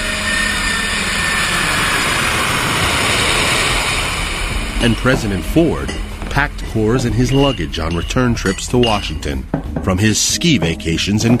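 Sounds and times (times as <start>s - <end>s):
Air Force jet airplane flying overhead: 0.0s - 8.0s
speech: 4.8s - 11.3s.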